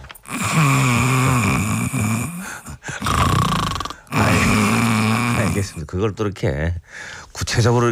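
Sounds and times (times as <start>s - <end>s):
person imitating snoring on exhaled breaths: 0.2s - 5.8s
speech: 5.6s - 7.8s.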